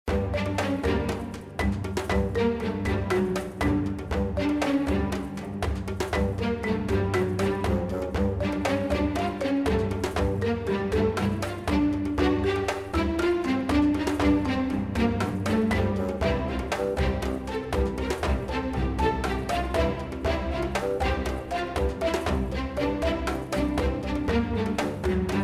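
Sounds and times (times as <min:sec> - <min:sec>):
background music: 0:00.1 - 0:25.4.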